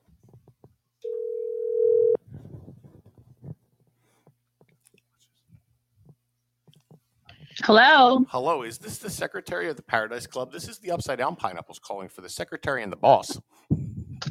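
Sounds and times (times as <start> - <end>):
telephone ring tone over the line: 1.0 - 2.2
speech: 7.7 - 13.7.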